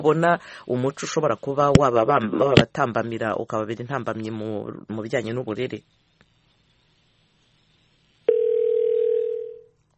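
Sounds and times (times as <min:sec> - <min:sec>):
speech: 0:00.0 - 0:06.0
telephone dial tone after a dropped call: 0:08.3 - 0:09.6.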